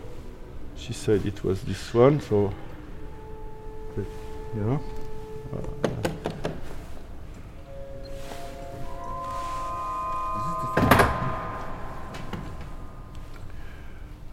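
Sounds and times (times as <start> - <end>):
speech: 0.8 - 2.7, 4.0 - 6.0
sustained organ tones: 2.3 - 13.6.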